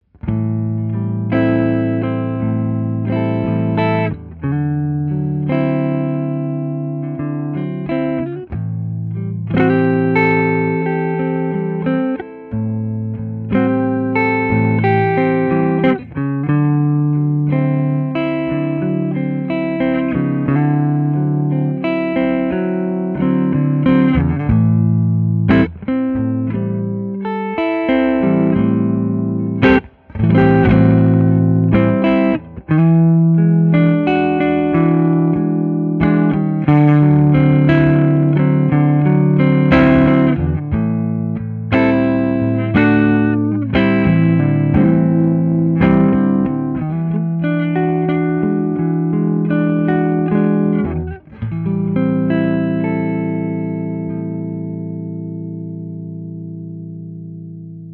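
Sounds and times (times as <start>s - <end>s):
Les Paul Deluxe Gold Top electric guitar: 0.0s - 57.9s.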